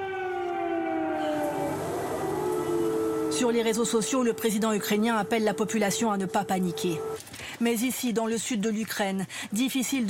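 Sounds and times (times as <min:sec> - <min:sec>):
air-raid sirens wailing across an open city: 0:00.0 - 0:07.2
speech: 0:03.4 - 0:10.0.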